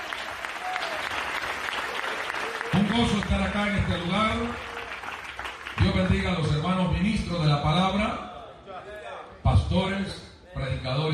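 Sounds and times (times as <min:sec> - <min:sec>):
applause during a church service: 0:00.0 - 0:06.6
speech: 0:03.0 - 0:04.7, 0:06.0 - 0:08.3, 0:09.7 - 0:11.1.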